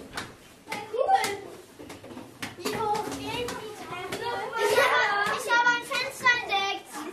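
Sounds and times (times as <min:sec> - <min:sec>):
children chattering and calling out in an empty church: 0:00.6 - 0:01.7, 0:02.5 - 0:07.1.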